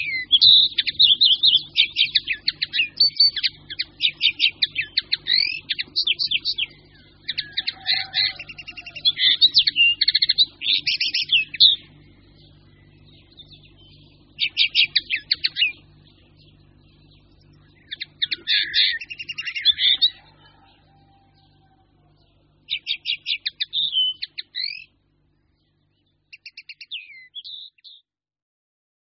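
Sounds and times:
faint low hum: 0.0 - 27.7
Eurasian linnet singing twittering phrases of ticking notes and whistles: 0.0 - 28.0.

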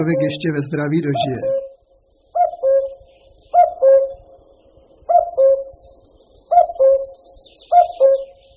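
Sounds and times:
speech: 0.0 - 1.6
common cuckoo calling: 0.0 - 4.4, 5.0 - 8.5.

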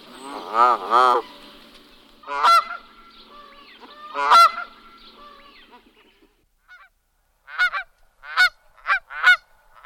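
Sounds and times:
Canada goose honks: 2.2 - 5.8, 6.7 - 9.8.

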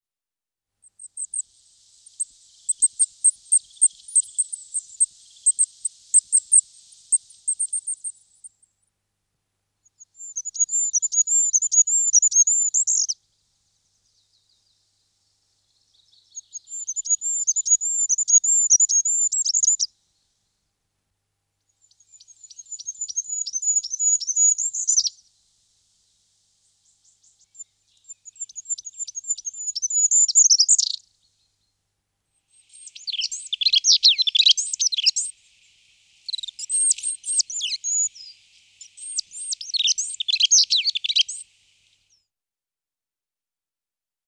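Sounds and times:
goldcrest Regulus regulus calling: 0.8 - 8.6, 9.9 - 13.2, 15.6 - 19.9, 21.8 - 25.2, 26.7 - 31.6, 32.4 - 42.2.

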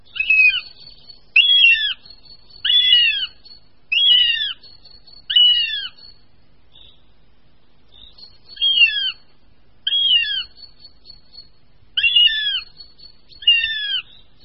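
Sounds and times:
hungry young northern goshawks begging calls: 0.2 - 0.8, 1.4 - 6.2, 8.5 - 10.8, 12.0 - 14.2.

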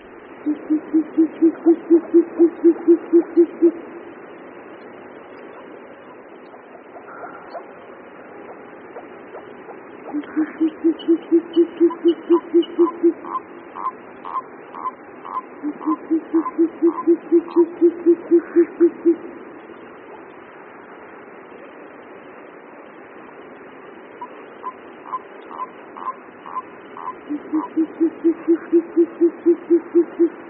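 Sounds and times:
soft hiss: 0.0 - 30.4
short-eared owl male courtship hooting: 0.4 - 3.9, 5.5 - 19.3, 24.2 - 30.4.

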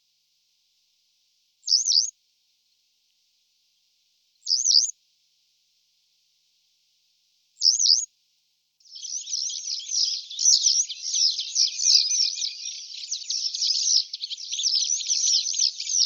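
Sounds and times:
Western yellow wagtail calls, Motacilla flava: 8.8 - 16.0.

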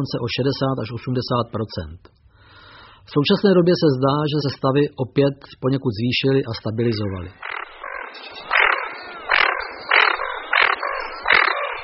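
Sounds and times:
speech: 0.0 - 2.2, 3.0 - 7.5
hoarse growling call of a pond bird: 7.3 - 11.8.

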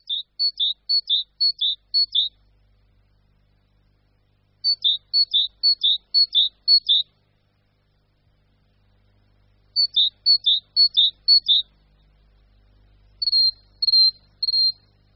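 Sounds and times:
great tit spring call: 0.0 - 2.3, 4.6 - 7.1, 9.8 - 11.7, 13.2 - 14.8.

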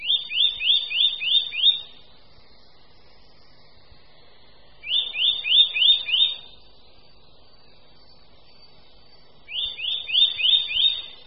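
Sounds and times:
Eurasian nuthatch calls: 0.0 - 2.0, 4.8 - 6.7, 9.4 - 11.2.

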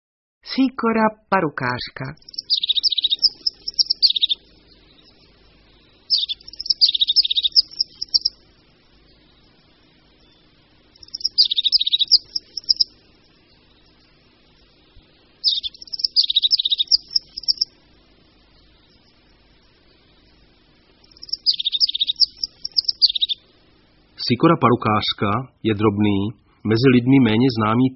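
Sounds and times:
speech: 0.4 - 2.4, 24.3 - 27.9
crested tit calls trilling: 2.2 - 14.1, 15.4 - 17.8, 20.2 - 23.5.

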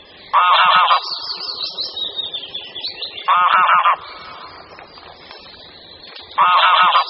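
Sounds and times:
greylag geese gabbling and chattering: 0.3 - 1.8, 3.2 - 5.6, 6.2 - 7.0
greylag goose honks: 0.4 - 1.0, 3.3 - 4.0, 6.4 - 7.0.

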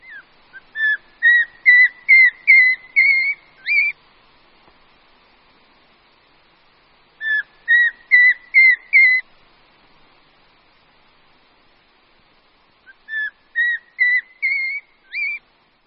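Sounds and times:
Eurasian pygmy owl whistling rising series of tones: 0.0 - 4.0, 7.2 - 9.2, 13.1 - 15.4.

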